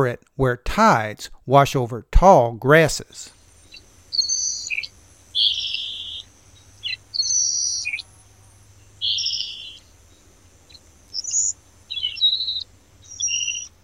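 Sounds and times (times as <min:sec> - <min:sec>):
speech: 0:00.0 - 0:03.4
saltmarsh sparrow singing dry hissing buzzy phrases: 0:03.0 - 0:13.8.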